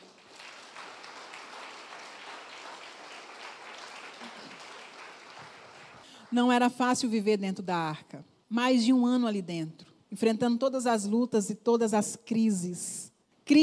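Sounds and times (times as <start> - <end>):
congregation applauding: 0.0 - 6.4
speech: 6.3 - 13.6.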